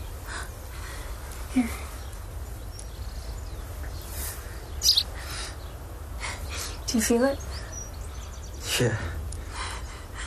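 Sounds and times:
faint twittering: 0:00.0 - 0:09.2
low steady rumble: 0:00.0 - 0:10.2
speech: 0:01.5 - 0:01.8, 0:06.9 - 0:07.5, 0:08.8 - 0:09.2
baby sparrow chirping: 0:01.6 - 0:09.0.

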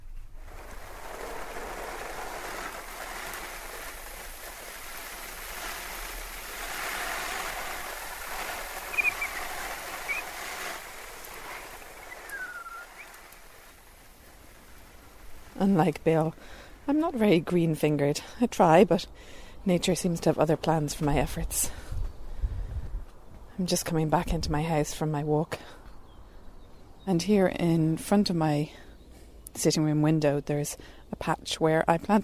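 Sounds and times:
water splashing onto tomato plants: 0:00.4 - 0:16.6
faint chirps: 0:08.8 - 0:10.4, 0:12.0 - 0:13.2
speech: 0:15.6 - 0:21.8, 0:23.6 - 0:25.8, 0:27.1 - 0:28.8, 0:29.6 - 0:32.2.

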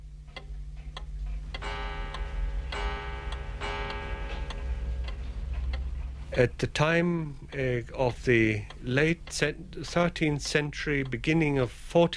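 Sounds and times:
low hum: 0:00.0 - 0:12.1
pendulum clock ticking: 0:00.0 - 0:12.1
sustained ringing metallic tone: 0:01.6 - 0:05.6
speech: 0:06.4 - 0:12.1.

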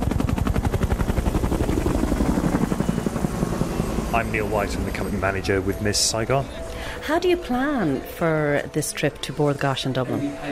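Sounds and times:
helicopter rotor noise: 0:00.0 - 0:07.8
speech: 0:04.2 - 0:10.4.

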